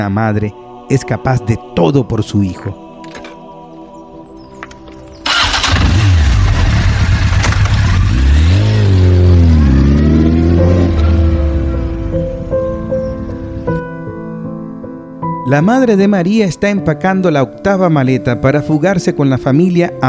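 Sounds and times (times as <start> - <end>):
speech: 0.0 - 2.8, 15.5 - 20.0
motorcycle engine sputtering to life, revving and idling: 5.2 - 13.6.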